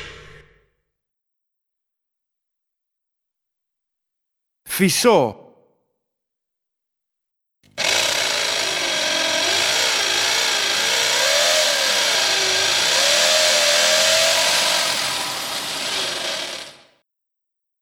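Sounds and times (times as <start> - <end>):
speech: 4.8 - 5.4
electric drill drilling: 7.7 - 16.9.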